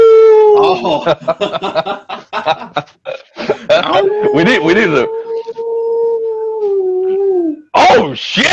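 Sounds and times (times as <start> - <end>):
person imitating wolf howl: 0.0 - 0.8, 3.9 - 7.8
laughter: 0.6 - 4.9
speech: 1.0 - 2.8, 4.4 - 5.2.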